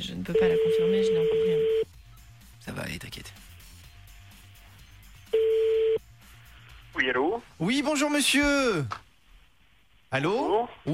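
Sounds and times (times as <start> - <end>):
speech: 0.0 - 1.7, 2.8 - 3.5, 7.1 - 9.0, 10.1 - 10.9
telephone ringback tone on an outgoing call: 0.3 - 1.9, 5.3 - 6.0
faint hiss: 2.1 - 10.9.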